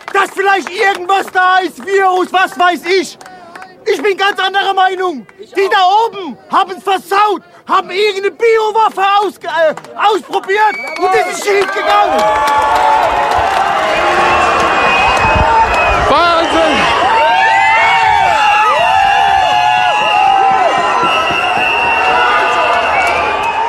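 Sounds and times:
speech: 0.3s - 3.3s, 3.9s - 14.2s
large protest crowd roaring while storming a parliament building in Berlin: 11.2s - 23.6s.

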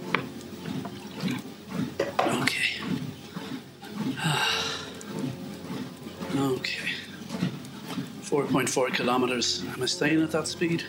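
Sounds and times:
low hum: 0.0s - 10.8s
person sipping and swallowing water: 0.5s - 8.2s
speech: 8.4s - 10.8s.

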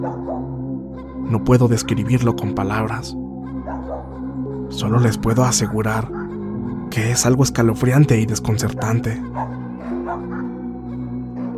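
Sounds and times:
speech: 0.0s - 0.6s, 1.3s - 3.2s, 4.7s - 6.2s, 6.9s - 9.5s
several neighbourhood dogs barking: 0.0s - 0.7s, 3.5s - 4.3s, 5.8s - 6.5s, 9.2s - 10.7s, 11.3s - 11.5s
dogs howling: 0.0s - 0.8s, 3.5s - 4.4s, 5.6s - 6.8s, 9.2s - 11.5s.

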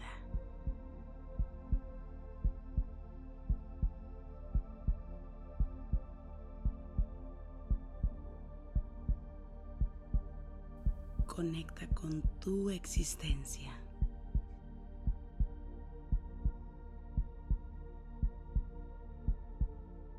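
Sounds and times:
heartbeat thumping: 0.0s - 0.8s, 1.4s - 5.0s, 5.6s - 8.2s, 8.8s - 9.2s, 10.8s - 19.8s
soft sustained musical hum: 0.0s - 20.1s
speech: 11.4s - 13.8s.

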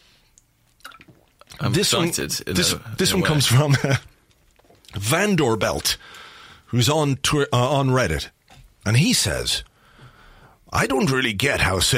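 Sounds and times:
faint hiss: 0.0s - 11.9s
person sipping and swallowing water: 0.3s - 1.6s
speech: 1.6s - 4.1s, 5.0s - 6.0s, 6.7s - 9.7s, 10.7s - 11.9s.

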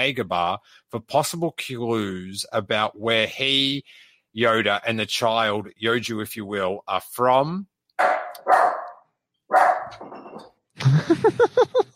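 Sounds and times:
speech: 0.0s - 8.7s, 9.5s - 11.9s
dog barking: 8.0s - 10.0s
laughter: 10.8s - 11.9s.

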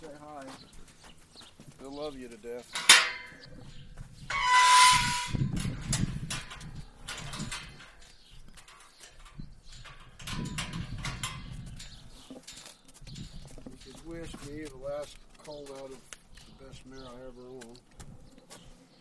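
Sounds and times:
speech: 0.0s - 0.9s, 1.8s - 4.6s, 16.7s - 17.8s
yearling horses nibbling and mouthing the microphone: 0.0s - 18.9s.

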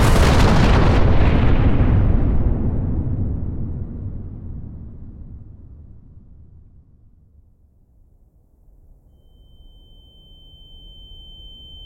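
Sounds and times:
uranium atom bomb dropped from a B-29 bomber exploding: 0.0s - 7.0s.

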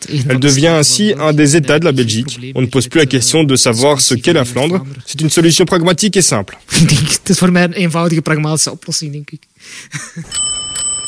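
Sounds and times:
speech: 0.1s - 10.6s
laughter: 9.9s - 10.4s
bicycle bell ringing: 10.3s - 11.0s.

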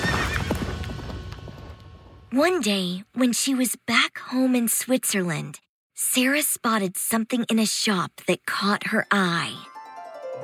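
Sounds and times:
ridden horse whinnying in the mountains of Turkey: 0.0s - 0.7s
ridden horse hooves clip-clopping in the mountains of Turkey: 0.0s - 2.2s
speech: 2.3s - 9.7s.

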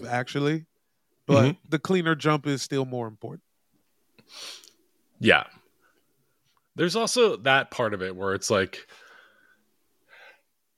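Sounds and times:
speech: 0.0s - 0.7s, 1.3s - 3.5s, 4.3s - 4.6s, 5.2s - 5.6s, 6.8s - 9.0s
person sneezing: 1.3s - 1.6s.

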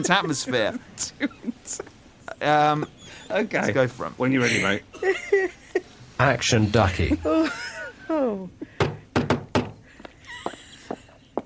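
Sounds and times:
speech: 0.0s - 5.6s, 6.2s - 8.6s
laughter: 0.0s - 8.8s, 10.2s - 11.2s
postman knocking on a door: 8.8s - 9.8s
faint thuds: 8.8s - 9.9s.

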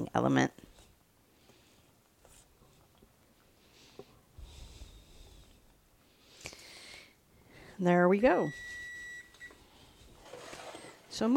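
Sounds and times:
speech: 0.2s - 0.6s, 7.8s - 8.8s, 11.2s - 11.3s
quiet hiss: 0.2s - 11.2s
kitchen timer beeping: 8.3s - 9.6s.

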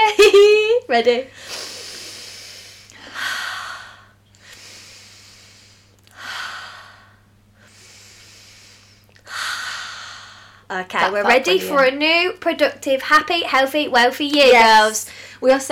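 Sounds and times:
speech: 0.9s - 1.7s, 10.7s - 15.7s
slow deep breathing exercise: 1.4s - 10.7s.

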